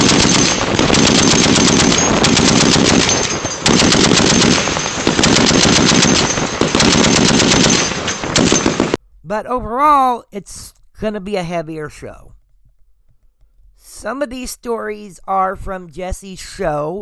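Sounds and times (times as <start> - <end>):
machine gun firing in rapid bursts: 0.0 - 9.0
speech: 9.3 - 12.4, 14.0 - 17.0.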